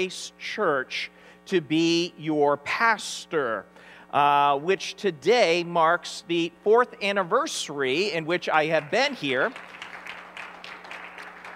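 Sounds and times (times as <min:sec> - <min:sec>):
speech: 0:00.0 - 0:09.8
faint electrical hum: 0:00.0 - 0:11.5
crowd of people clapping: 0:08.7 - 0:11.5.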